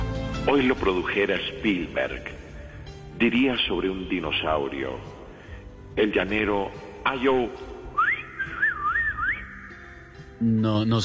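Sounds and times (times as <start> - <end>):
speech: 0.4 - 2.4, 3.2 - 5.1, 6.0 - 7.7, 10.4 - 11.0
person whistling a short wavering melody: 7.9 - 10.0.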